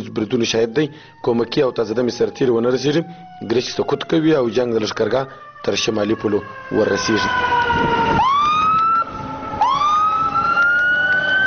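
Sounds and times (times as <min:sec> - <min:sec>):
ambulance siren wailing in a bazaar: 0:00.0 - 0:11.4
speech: 0:00.2 - 0:08.2.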